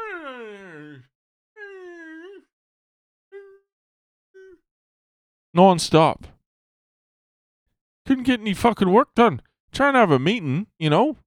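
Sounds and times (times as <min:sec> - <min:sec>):
person imitating a dog howling and moaning: 0:00.0 - 0:02.5, 0:03.4 - 0:03.7, 0:04.4 - 0:04.6
speech: 0:05.5 - 0:06.3, 0:08.1 - 0:11.2.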